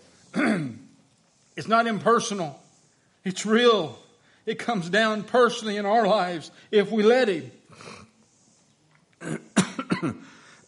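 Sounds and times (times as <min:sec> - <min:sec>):
person coughing: 0:00.3 - 0:00.8, 0:09.2 - 0:10.3
throat clearing: 0:00.3 - 0:00.9, 0:09.2 - 0:10.4
speech: 0:01.6 - 0:02.6, 0:03.2 - 0:07.9, 0:09.2 - 0:10.4.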